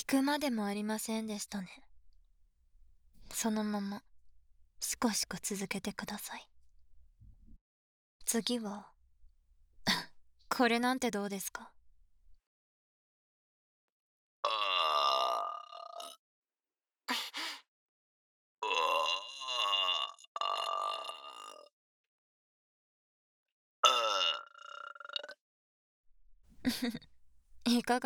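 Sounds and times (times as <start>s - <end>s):
speech: 0.1s - 1.9s, 3.4s - 4.1s, 4.8s - 6.5s, 8.3s - 8.9s, 10.5s - 11.8s, 26.7s - 28.0s
woman burping: 14.5s - 16.2s, 18.6s - 21.7s, 23.8s - 25.4s.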